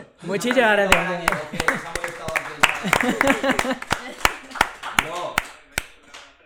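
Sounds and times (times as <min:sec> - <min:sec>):
speech: 0:00.2 - 0:02.0, 0:02.8 - 0:04.0
voices chattering: 0:00.2 - 0:06.4
people laughing: 0:00.3 - 0:06.2
scattered hand claps from a few people: 0:00.4 - 0:06.4.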